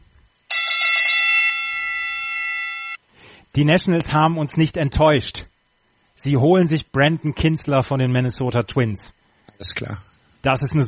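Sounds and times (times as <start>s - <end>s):
bell strike ringing as a news alert: 0.5s - 3.0s
speech: 3.6s - 5.5s, 6.2s - 10.8s.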